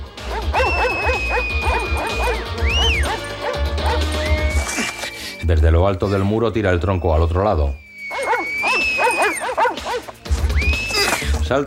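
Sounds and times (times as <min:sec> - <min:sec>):
several Doberman dogs barking and yipping: 0:00.0 - 0:05.0, 0:08.1 - 0:11.3
speech: 0:05.5 - 0:07.8, 0:11.5 - 0:11.6.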